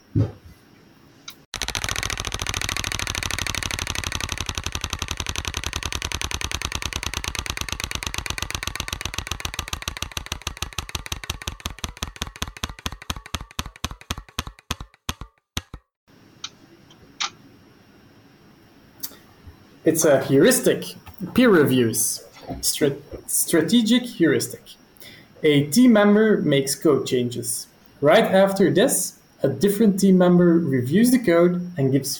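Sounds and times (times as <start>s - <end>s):
roulette-style wheel spinning with pointer ticking: 1.6s - 15.8s
speech: 19.9s - 24.8s, 25.4s - 32.1s.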